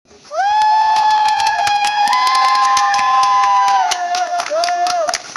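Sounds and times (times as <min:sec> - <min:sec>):
woman cheering: 0:00.3 - 0:05.2.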